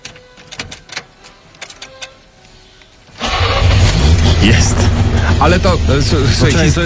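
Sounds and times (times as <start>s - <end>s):
old FSO Syrena car engine cranking with ignition trouble then idling roughly: 3.1s - 6.8s
speech: 4.4s - 6.8s.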